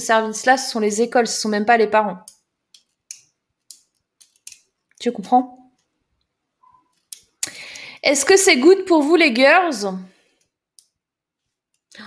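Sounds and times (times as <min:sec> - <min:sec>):
speech: 0:00.0 - 0:02.4, 0:05.0 - 0:05.6, 0:08.0 - 0:10.1
ballpoint pen clicking: 0:02.2 - 0:04.7.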